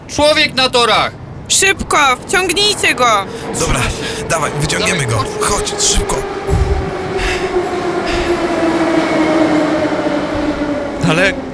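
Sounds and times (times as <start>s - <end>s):
speech: 0.1s - 6.6s, 11.1s - 11.5s
metro train rumbling through an underground station: 2.7s - 4.6s, 5.4s - 11.5s.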